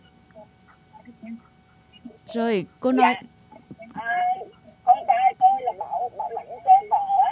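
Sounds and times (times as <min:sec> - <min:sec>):
speech: 0:02.3 - 0:03.3
radio broadcast voices bleeding through a caller's phone line: 0:03.9 - 0:07.3.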